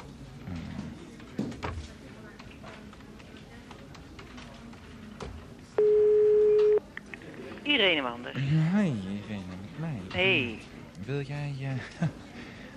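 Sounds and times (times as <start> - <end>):
faint clicks and taps of office telephone dialing: 1.2 - 5.5
loud steady office telephone line tone: 5.8 - 6.8
speech: 7.8 - 9.5, 10.1 - 12.2.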